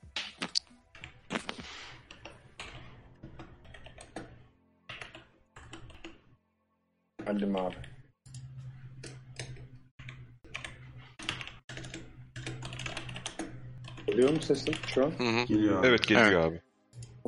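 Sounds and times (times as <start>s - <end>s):
keystrokes on a computer keyboard typing character notes in an online role-playing game: 3.6s - 6.2s, 7.6s - 15.0s
speech: 7.3s - 7.9s, 14.2s - 16.6s.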